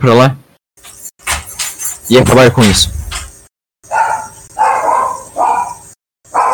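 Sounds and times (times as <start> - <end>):
speech: 0.0 - 1.0, 2.1 - 3.0
dogs barking: 3.8 - 6.5.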